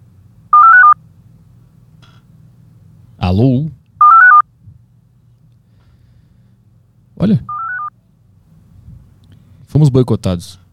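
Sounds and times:
telephone call signal beep: 0:00.6 - 0:01.0, 0:04.0 - 0:04.4, 0:07.5 - 0:07.9
speech: 0:03.3 - 0:03.8, 0:07.2 - 0:07.6, 0:09.7 - 0:10.6.

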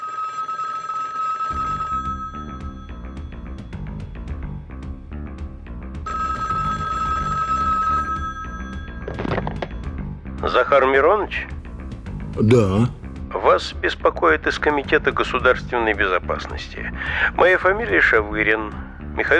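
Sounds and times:
telephone bell ringing: 0:00.0 - 0:03.8, 0:06.0 - 0:10.0
speech: 0:10.5 - 0:11.5, 0:12.4 - 0:13.0, 0:13.6 - 0:19.3.

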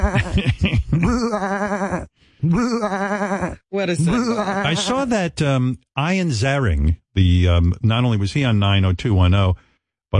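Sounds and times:
man imitating goat bleats: 0:00.0 - 0:00.4, 0:01.0 - 0:05.1
laughter: 0:00.0 - 0:01.4, 0:04.1 - 0:05.1
speech: 0:00.0 - 0:03.1, 0:03.8 - 0:10.1.

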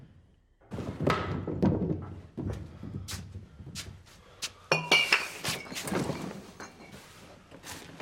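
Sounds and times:
dull thunks and knocks: 0:00.6 - 0:04.1
glass bottle clinking as it is picked up and handled: 0:04.7 - 0:07.1.

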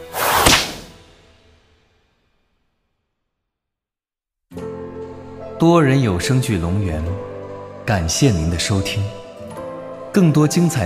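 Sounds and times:
flaming whip lashing: 0:00.0 - 0:01.0
speech: 0:05.6 - 0:07.3, 0:07.9 - 0:09.2, 0:10.1 - 0:10.8.

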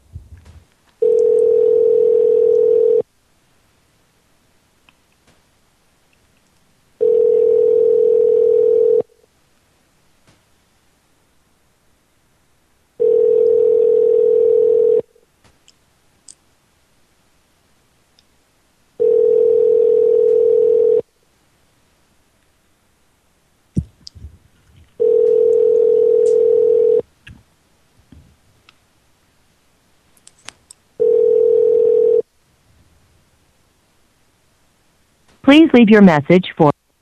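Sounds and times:
ringback tone of a telephone call waiting to be answered: 0:01.0 - 0:03.0, 0:07.0 - 0:09.1, 0:13.0 - 0:15.1, 0:19.0 - 0:21.0, 0:25.0 - 0:27.0, 0:31.0 - 0:32.2
speech: 0:35.6 - 0:36.7.

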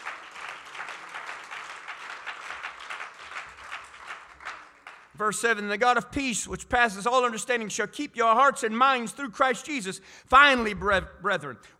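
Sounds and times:
congregation clapping hands during a church service: 0:00.0 - 0:06.2
speech: 0:05.2 - 0:11.7.

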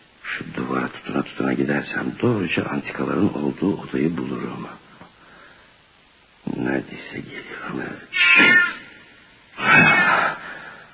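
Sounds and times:
speech: 0:00.8 - 0:04.8, 0:06.6 - 0:08.6
cat yowling after being stepped on: 0:08.1 - 0:08.9, 0:09.6 - 0:10.4.

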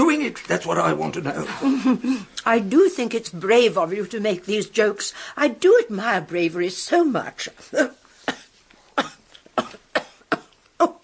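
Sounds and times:
speech: 0:00.3 - 0:08.0
person coughing while choking on a fishbone: 0:08.2 - 0:10.6.

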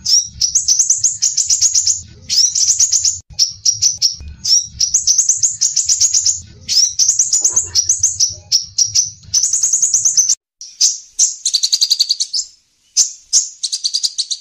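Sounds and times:
faint low hum: 0:00.0 - 0:10.4
crimson sunbird song: 0:00.0 - 0:14.3.

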